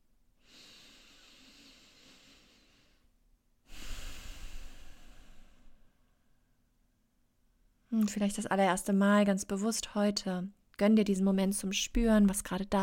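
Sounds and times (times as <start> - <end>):
slow deep breathing during a guided relaxation: 0.4 - 6.7
speech: 8.0 - 12.8.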